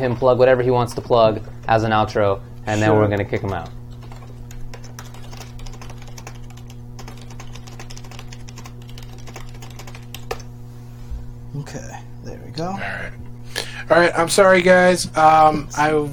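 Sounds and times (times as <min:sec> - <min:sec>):
speech: 0:00.0 - 0:03.8, 0:13.9 - 0:16.1
constant low electrical hum: 0:00.0 - 0:16.1
typing on a computer keyboard: 0:03.1 - 0:10.5.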